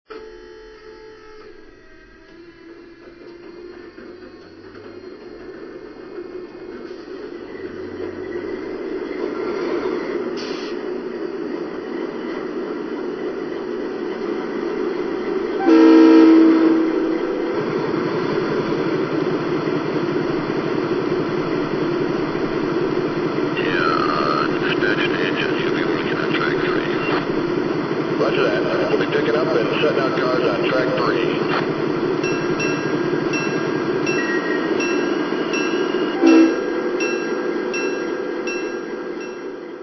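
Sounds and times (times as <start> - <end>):
GE Dash 8 diesel locomotive: 0.1 - 39.8.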